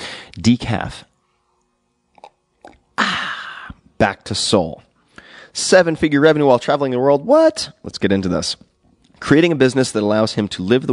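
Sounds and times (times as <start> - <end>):
speech: 0.4 - 1.1, 4.0 - 10.9
person slurping hot tea: 2.1 - 2.9
soft mouth clicks: 2.1 - 3.8.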